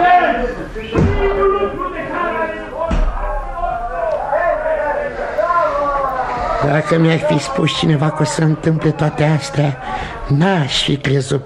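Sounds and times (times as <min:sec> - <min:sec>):
steady conversation: 0:00.0 - 0:11.4
door being shut with a heavy thud: 0:01.0 - 0:01.3
speech: 0:06.6 - 0:11.4.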